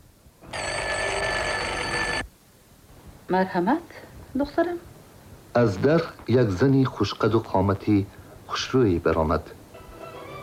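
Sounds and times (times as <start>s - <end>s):
faint hiss: 0.0s - 0.6s, 1.7s - 10.4s
doorbell pressed by hand, bright ringing buzz: 0.4s - 2.2s
speech: 3.3s - 4.9s, 5.6s - 9.6s.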